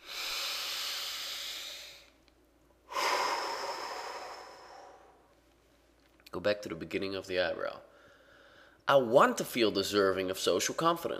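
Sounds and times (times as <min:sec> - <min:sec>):
person taking a slow deliberate breath during a tapping exercise: 0:00.0 - 0:02.2, 0:02.9 - 0:05.4, 0:07.9 - 0:08.8
speech: 0:06.3 - 0:07.9, 0:08.9 - 0:11.1.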